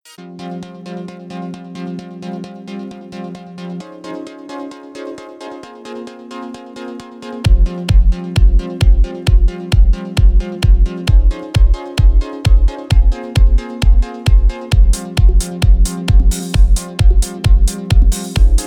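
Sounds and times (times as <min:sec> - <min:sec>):
aerobic dance music at 133 BPM tuned to 432 Hz: 0:07.3 - 0:18.6.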